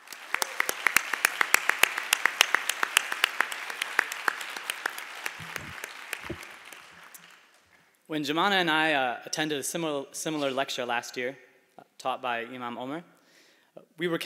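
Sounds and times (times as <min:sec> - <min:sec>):
moderate-sized audience applauding: 0:00.0 - 0:07.8
speech: 0:08.1 - 0:13.1, 0:14.0 - 0:14.2.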